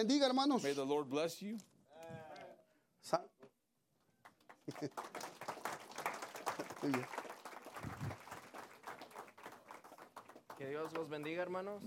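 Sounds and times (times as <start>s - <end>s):
speech: 0.0s - 2.3s, 3.0s - 3.3s, 4.7s - 5.4s, 6.8s - 7.2s, 10.6s - 11.8s
crowd applauding: 4.2s - 11.8s
laughter: 4.7s - 5.2s.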